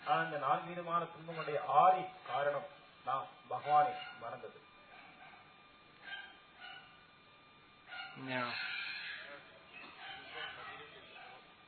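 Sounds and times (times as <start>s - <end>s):
speech: 0.1s - 4.7s, 8.2s - 8.8s
dogs barking: 3.6s - 7.0s, 7.8s - 11.6s.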